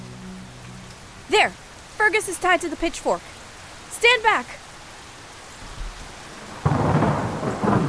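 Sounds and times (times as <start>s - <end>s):
pouring rain: 0.0s - 7.8s
speech: 1.3s - 3.3s, 4.0s - 4.6s
thunder rumbling and crackling: 5.8s - 7.8s.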